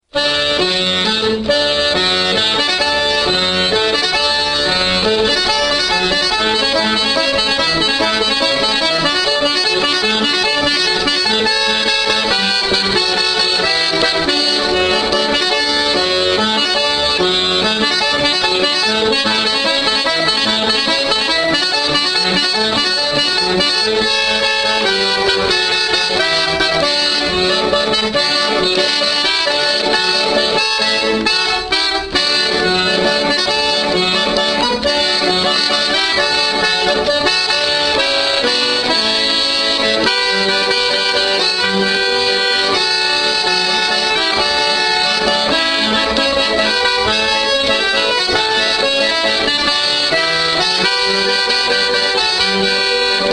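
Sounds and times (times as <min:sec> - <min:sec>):
accordion: 0:00.0 - 0:53.3.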